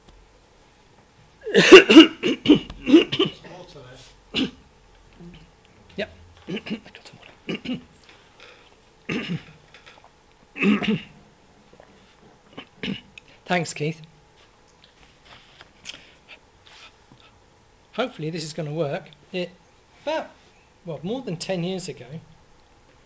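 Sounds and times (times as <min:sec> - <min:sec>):
person clearing throat: 0:01.4 - 0:03.5, 0:04.3 - 0:04.6, 0:06.4 - 0:07.9, 0:09.1 - 0:09.6, 0:10.6 - 0:11.2, 0:12.5 - 0:13.1
person coughing: 0:01.4 - 0:03.5, 0:04.3 - 0:04.6, 0:06.4 - 0:07.9, 0:09.1 - 0:09.6, 0:10.6 - 0:11.2, 0:12.5 - 0:13.1
speech: 0:01.5 - 0:02.1, 0:13.6 - 0:14.2, 0:18.0 - 0:22.3.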